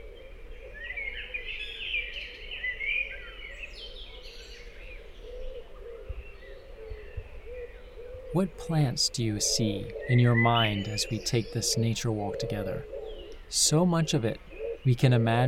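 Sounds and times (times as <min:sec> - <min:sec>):
birds calling and chirping: 0:00.0 - 0:15.4
steady outdoor hum: 0:00.0 - 0:15.4
speech: 0:08.4 - 0:12.9, 0:13.5 - 0:15.4.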